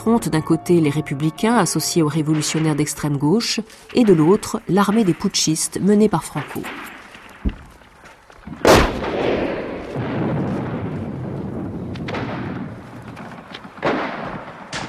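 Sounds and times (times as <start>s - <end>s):
speech: 0.0s - 7.6s
gunfire in a war scene: 8.5s - 11.0s, 13.4s - 14.8s
grenade explosion in a war scene at the Spanish Civil War front: 8.5s - 14.8s.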